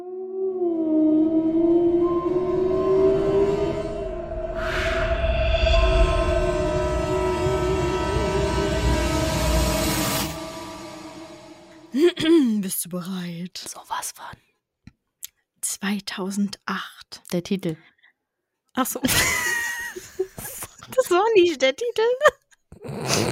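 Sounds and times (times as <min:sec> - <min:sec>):
wavering siren-like wail: 0:00.0 - 0:11.9
sustained eerie droning tones: 0:00.0 - 0:12.0
low rumble: 0:00.8 - 0:12.0
speech: 0:12.9 - 0:13.2, 0:14.0 - 0:14.5, 0:15.8 - 0:17.9, 0:18.8 - 0:20.1, 0:20.9 - 0:23.3
laughter: 0:19.0 - 0:21.0.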